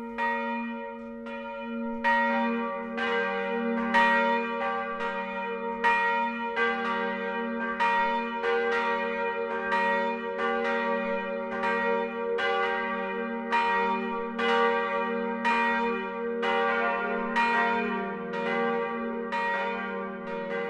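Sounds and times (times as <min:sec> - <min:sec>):
Protestant church bells pealing the noon chime in Middle Franconia, Germany: 0:00.0 - 0:20.6.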